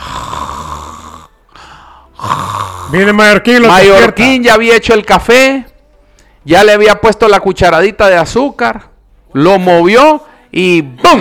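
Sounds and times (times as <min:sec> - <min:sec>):
person snoring: 0:00.0 - 0:03.2
speech: 0:02.9 - 0:05.7, 0:06.4 - 0:11.2.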